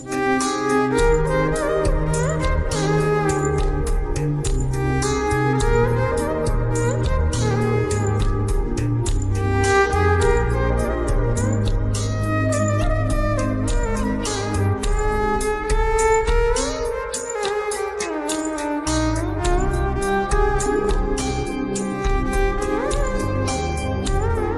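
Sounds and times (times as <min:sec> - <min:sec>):
violin cover of a love song: 0:00.1 - 0:24.5.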